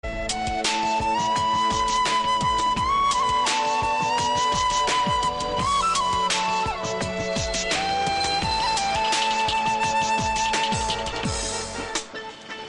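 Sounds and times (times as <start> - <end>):
flute music: 0.0 - 12.6.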